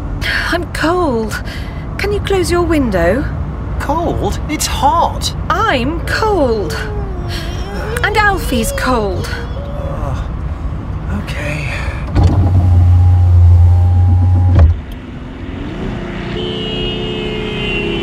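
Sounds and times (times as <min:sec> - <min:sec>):
car engine and road rumble heard from inside a car driving fast: 0:00.0 - 0:18.0
speech: 0:00.5 - 0:09.5
loud low motor whir: 0:12.1 - 0:15.1.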